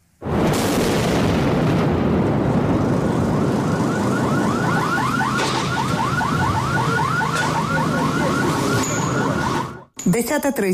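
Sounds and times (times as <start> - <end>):
shelling explosion in Kramatorsk, Donetsk region, Ukraine: 0.2 - 8.7
car alarm warbling: 3.1 - 10.0
speech: 10.2 - 10.7.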